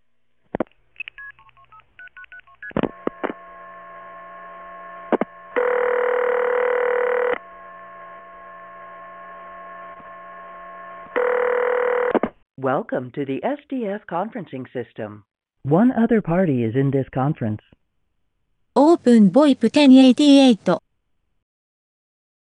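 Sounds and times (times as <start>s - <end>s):
DTMF keypad tones dialing into a VoIP conference call: 1.0s - 3.4s, 5.6s - 7.4s
steady electronic tone: 2.9s - 12.1s
speech: 12.7s - 17.8s, 19.0s - 20.8s.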